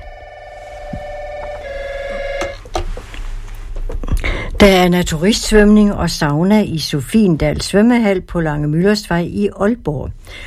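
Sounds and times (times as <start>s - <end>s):
telephone ringing with an electronic warble: 0.0s - 2.7s
speech: 4.6s - 10.4s.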